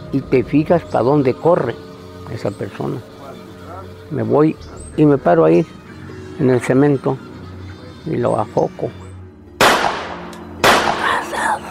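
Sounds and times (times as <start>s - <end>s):
speech: 0.1s - 3.1s, 4.1s - 5.8s, 6.4s - 7.3s, 8.0s - 9.0s
loud sharp gunshots with tail: 9.6s - 11.2s.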